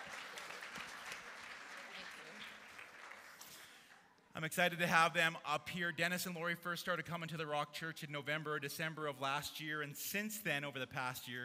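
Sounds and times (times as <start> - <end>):
church audience applause welcoming a couple to the stage: 0.0 - 3.8
speech: 4.4 - 11.4.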